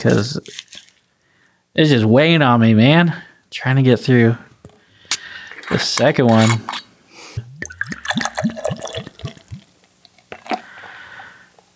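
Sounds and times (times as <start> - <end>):
speech: 0.0 - 0.8, 1.8 - 4.5, 5.7 - 6.8
stout beer glugging from a growler: 0.0 - 0.8, 5.2 - 10.9
soft foamy fizz of settling stout: 5.5 - 9.7.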